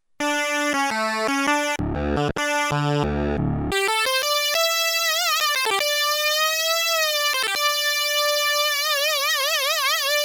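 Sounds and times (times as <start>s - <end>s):
Korg PolySix high unison solo synthesizer lead: 0.2s - 10.2s.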